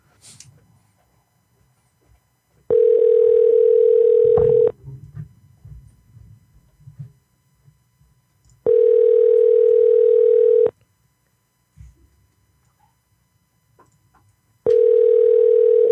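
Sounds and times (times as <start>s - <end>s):
telephone ringback tone: 2.7s - 4.7s, 8.6s - 10.7s, 14.7s - 15.9s.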